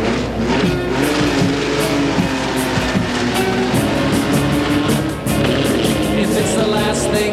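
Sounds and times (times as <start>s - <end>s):
race car engine running at a drag race: 0.0s - 7.3s.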